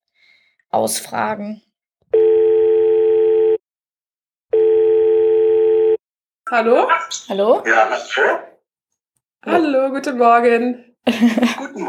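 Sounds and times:
speech: 0.7s - 1.7s, 6.5s - 8.5s, 9.4s - 11.8s
Skype call ringing tone: 2.2s - 3.6s, 4.5s - 6.0s
laughter: 11.1s - 11.8s.

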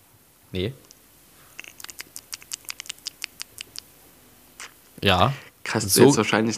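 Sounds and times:
speech: 0.5s - 0.9s, 5.0s - 6.5s
person imitating a rabbit munching food: 0.9s - 5.0s.

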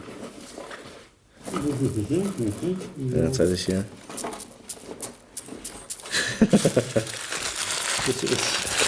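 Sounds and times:
sandwich paper being crumpled to imitate marching soldiers: 1.6s - 3.7s, 6.5s - 8.8s
speech: 1.6s - 4.3s, 6.7s - 7.2s, 8.0s - 8.7s.

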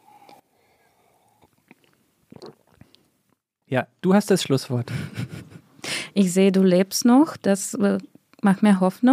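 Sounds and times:
person chewing and biting while tasting food: 1.3s - 3.1s
speech: 3.7s - 5.5s, 6.2s - 9.1s.

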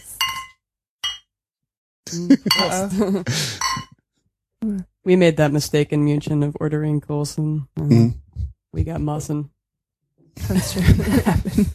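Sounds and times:
beer glasses clinking in a toast: 0.0s - 1.3s, 2.4s - 3.0s, 3.6s - 3.9s
speech: 2.1s - 3.7s, 4.7s - 9.6s, 10.4s - 11.7s.

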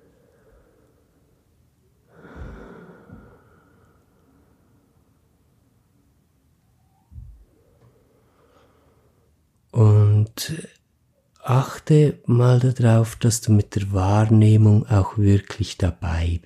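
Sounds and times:
slow deep belly breathing: 0.0s - 5.2s, 7.6s - 9.4s
speech: 9.8s - 10.8s, 11.5s - 16.4s.

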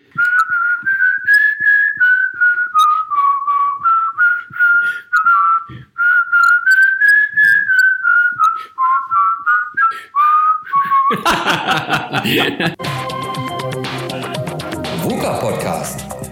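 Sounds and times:
person whistling a wavering melody: 0.0s - 11.9s, 12.8s - 15.2s
laughter: 11.0s - 12.8s
speech: 12.3s - 13.0s
instrumental music: 12.7s - 16.3s.

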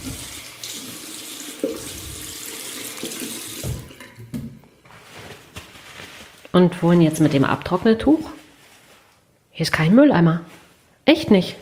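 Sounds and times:
hands washed under a running tap in a washroom: 0.0s - 4.0s
speech: 6.5s - 8.4s, 9.6s - 11.6s.

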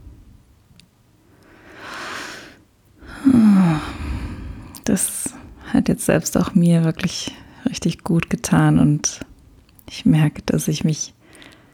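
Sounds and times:
deep slow breathing: 1.3s - 5.7s, 11.2s - 11.7s
soft falling voiced sigh: 3.0s - 4.8s
speech: 3.3s - 3.6s, 4.9s - 9.3s, 9.9s - 11.2s.

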